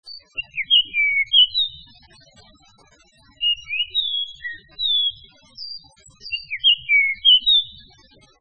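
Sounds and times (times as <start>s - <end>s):
Japanese grosbeak: 0.4s - 1.8s, 3.4s - 5.2s, 6.3s - 7.7s.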